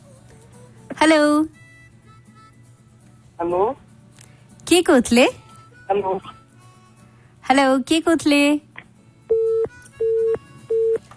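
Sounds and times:
speech: 1.0 - 1.6, 3.4 - 3.8, 4.7 - 6.4, 7.5 - 8.6
telephone busy signal on a phone-in call line: 9.3 - 11.0.

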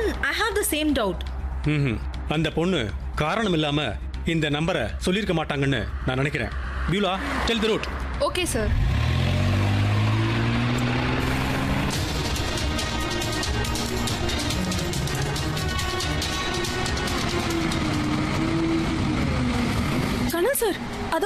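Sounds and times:
rattling road noise and clatter: 0.0 - 21.2
speech: 0.3 - 9.0
vehicle engine drone while driving: 5.7 - 21.2.

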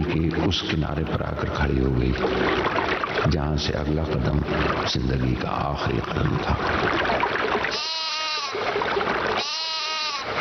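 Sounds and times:
speech: 0.2 - 7.4
lamb bleating: 7.7 - 8.6, 9.4 - 10.3.

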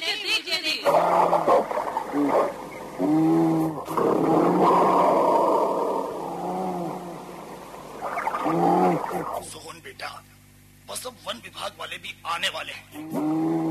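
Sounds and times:
constant noisy background: 0.0 - 13.6
speech: 0.8 - 5.0, 10.9 - 13.6
bear roaring: 0.9 - 7.5, 8.1 - 9.4, 13.0 - 13.6.

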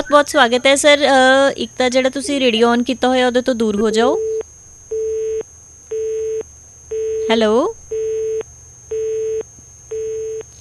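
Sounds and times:
speech: 0.0 - 4.3, 7.3 - 7.8
telephone busy tone after a call disconnects: 4.1 - 10.4.

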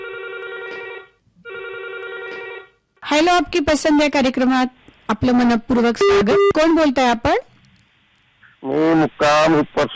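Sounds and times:
electronic telephone ring for an incoming call: 0.0 - 2.8
speech: 3.1 - 7.5, 8.7 - 9.9.

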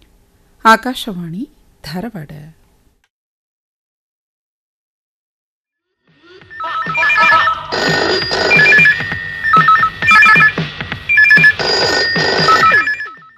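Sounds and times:
speech: 0.6 - 2.6
loud electronic trilling telephone ringtone for a live phone-in call: 6.5 - 13.3.

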